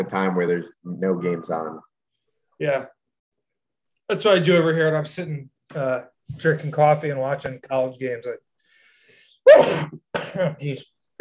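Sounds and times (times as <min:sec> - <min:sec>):
speech: 0:00.0 - 0:01.9, 0:02.6 - 0:03.0, 0:04.1 - 0:08.4, 0:09.5 - 0:11.2
sneeze: 0:09.5 - 0:10.4.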